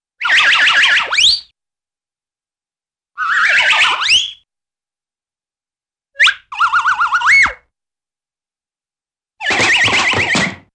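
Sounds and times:
cartoon circular motion whistle: 0.2s - 1.5s, 3.2s - 4.5s, 6.2s - 7.7s, 9.4s - 10.7s
cartoon streak drum: 9.5s - 10.7s.

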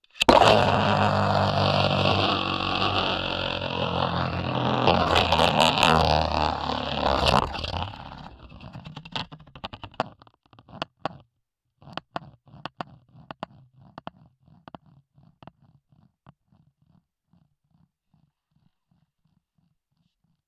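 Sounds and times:
beyblade spinning top: 0.1s - 10.1s.

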